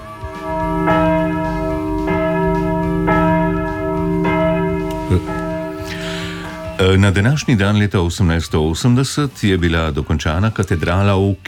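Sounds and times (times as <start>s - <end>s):
church bells ringing: 0.0s - 7.6s
speech: 6.9s - 11.4s.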